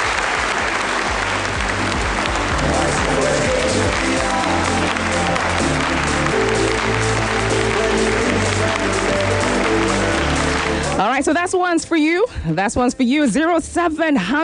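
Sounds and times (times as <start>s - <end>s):
crowd applause: 0.0s - 11.4s
low musical bed: 0.0s - 14.4s
speech: 11.2s - 14.4s.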